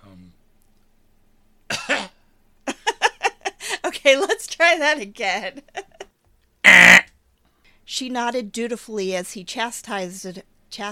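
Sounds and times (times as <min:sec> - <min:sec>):
person coughing uneasily: 0:01.7 - 0:02.2
laughter: 0:02.7 - 0:04.4, 0:05.5 - 0:06.0
speech: 0:04.0 - 0:05.8, 0:07.9 - 0:10.9.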